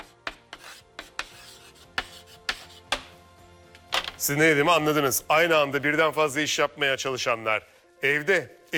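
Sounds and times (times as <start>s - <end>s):
pen or marker scratching while writing by hand across a surface: 0.0s - 3.0s
speech: 4.2s - 8.7s.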